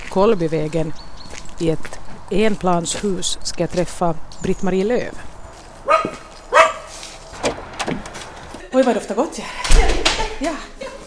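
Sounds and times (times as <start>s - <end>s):
speech: 0.2s - 5.3s, 8.8s - 10.7s
small dog barking inside a one-storey house on the outskirts of Jakobstad: 5.8s - 6.9s.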